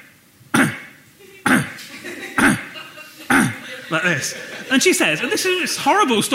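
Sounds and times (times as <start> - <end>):
person imitating a Pomeranian dog's cough: 0.6 - 1.8, 2.4 - 2.7, 3.3 - 3.6
laughter: 1.2 - 6.3
speech: 3.9 - 6.3.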